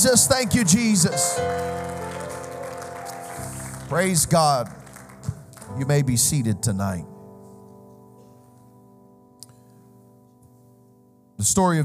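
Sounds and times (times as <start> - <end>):
speech: 0.0 - 2.0, 3.9 - 4.8, 5.7 - 7.1, 11.4 - 11.8
crowd clapping in praise: 0.0 - 6.1.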